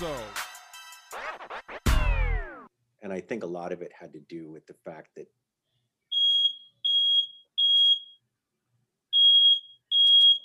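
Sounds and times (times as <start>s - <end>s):
speech: 3.1s - 5.4s
smoke alarm beeping: 6.1s - 8.2s, 9.1s - 10.4s.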